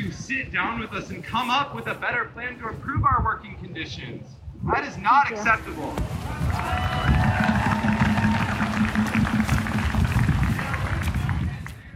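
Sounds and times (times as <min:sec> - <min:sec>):
speech: 0:00.3 - 0:07.2
crowd noise at a graduate workers' town hall meeting: 0:05.3 - 0:11.9.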